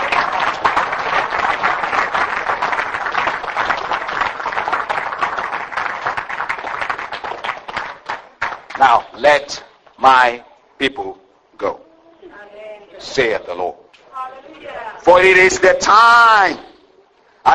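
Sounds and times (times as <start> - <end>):
large audience applauding in a reverberant church: 0.0 - 9.1
speech: 9.2 - 11.8, 13.0 - 13.7, 15.1 - 16.7.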